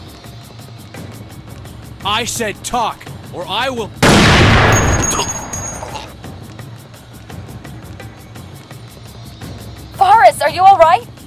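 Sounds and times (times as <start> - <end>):
speech: 2.0 - 5.4, 10.4 - 11.1
sniper rifle shot: 4.0 - 6.1.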